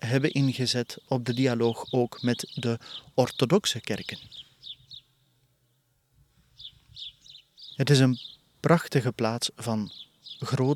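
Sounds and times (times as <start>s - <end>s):
small birds chirping outdoors: 0.0s - 10.7s
speech: 0.1s - 4.5s, 7.8s - 10.7s.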